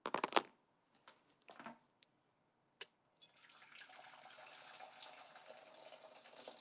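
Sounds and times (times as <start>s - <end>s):
freshly boiled hot water pouring: 3.2s - 6.5s.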